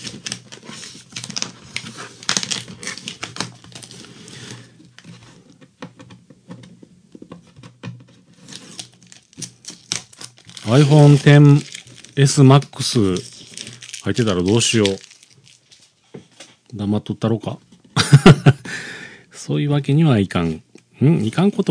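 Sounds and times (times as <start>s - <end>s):
packing tape peeled by hand off a package: 0.0s - 5.1s, 8.3s - 15.9s
speech: 10.7s - 13.3s, 14.0s - 15.1s, 16.8s - 17.7s, 19.5s - 21.6s.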